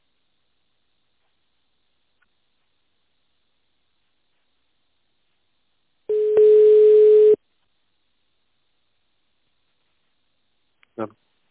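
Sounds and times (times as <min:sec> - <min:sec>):
telephone line tone while a call is transferred: 0:06.1 - 0:07.4.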